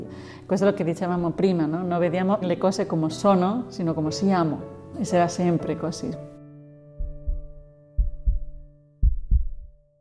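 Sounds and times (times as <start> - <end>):
speech: 0.1 - 6.3
heartbeat: 7.0 - 10.0.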